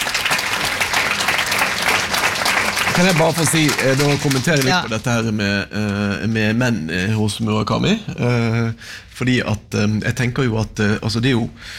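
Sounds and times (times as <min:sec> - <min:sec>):
applause: 0:00.0 - 0:05.1
speech: 0:03.0 - 0:11.7.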